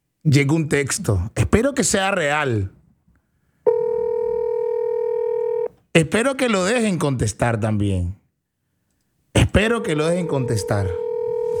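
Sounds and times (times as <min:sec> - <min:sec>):
speech: 0:00.2 - 0:02.8, 0:06.0 - 0:08.2, 0:09.5 - 0:11.5
phone ringing on a call: 0:03.7 - 0:05.7, 0:10.0 - 0:11.5.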